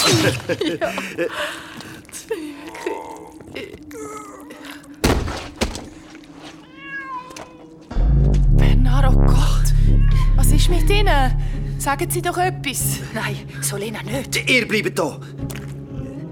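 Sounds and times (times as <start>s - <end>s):
laughter: 0.0s - 2.5s
speech: 0.1s - 2.4s, 10.6s - 15.4s
cat meowing in short wavering cries: 6.6s - 7.8s, 9.9s - 10.3s
loud low rumble: 7.9s - 13.4s.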